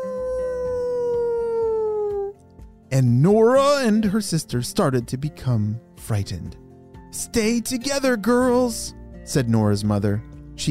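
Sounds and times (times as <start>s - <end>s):
animal howling above a burrow: 0.0s - 2.4s
speech: 2.9s - 10.6s.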